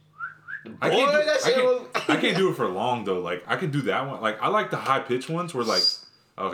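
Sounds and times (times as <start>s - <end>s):
person whistling: 0.1s - 0.8s
speech: 0.6s - 6.5s
laughter: 0.7s - 2.9s.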